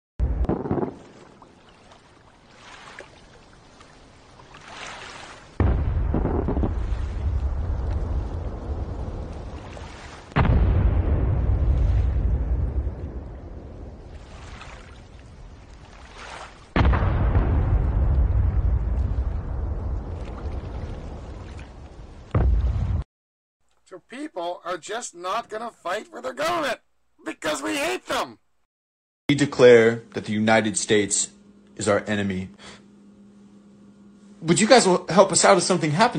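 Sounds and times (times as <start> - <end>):
heavy missile explosions striking an aircraft carrier: 0.2 - 1.1, 5.6 - 14.2, 16.8 - 21.4, 22.3 - 23.0
speech: 24.0 - 28.4, 29.3 - 32.8, 34.4 - 36.1.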